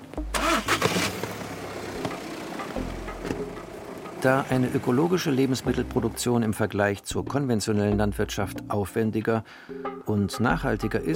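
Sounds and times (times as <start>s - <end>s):
car engine starting and car driving off: 0.2s - 6.3s
speech: 4.3s - 11.1s.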